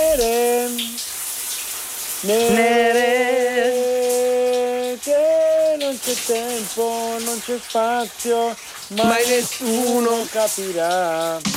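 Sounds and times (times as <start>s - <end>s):
person singing a sustained gliding note: 0.0s - 1.0s, 2.2s - 11.4s
shower water running: 0.0s - 11.5s
speech: 2.2s - 2.7s, 6.2s - 11.5s.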